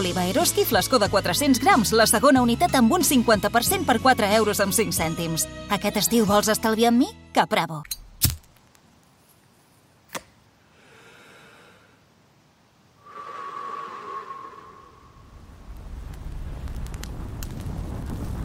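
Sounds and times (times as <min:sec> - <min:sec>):
speech: 0:00.0 - 0:08.0
sharp snap: 0:07.9 - 0:08.6, 0:10.1 - 0:10.4
hissing whoosh swelling into rumbling fire roar: 0:13.0 - 0:18.4.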